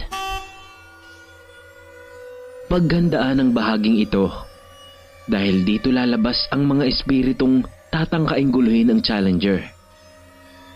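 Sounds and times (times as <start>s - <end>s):
car horn honking: 0.0s - 7.1s
low hum: 0.0s - 10.7s
speech: 2.7s - 4.5s, 5.3s - 9.7s.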